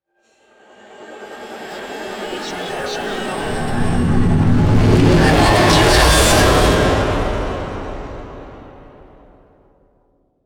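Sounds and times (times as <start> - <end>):
dark futuristic stuttering metallic riser: 2.6 - 8.9.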